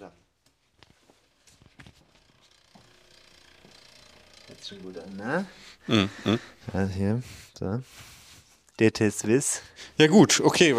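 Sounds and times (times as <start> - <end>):
cyclocross bicycle freehub ratchet clicking: 1.6 - 5.8
speech: 4.6 - 8.2, 8.8 - 10.7.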